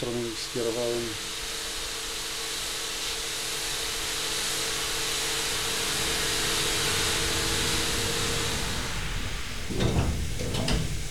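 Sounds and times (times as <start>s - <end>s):
speech: 0.0s - 1.4s
steady mechanical hiss and hum: 0.0s - 11.0s
elevator doors sliding closed: 5.7s - 11.0s.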